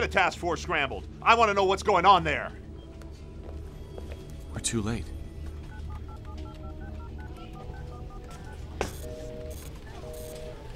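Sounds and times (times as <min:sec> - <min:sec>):
speech: 0:00.0 - 0:02.6, 0:04.6 - 0:05.2
telephone keypad tones: 0:05.7 - 0:10.7.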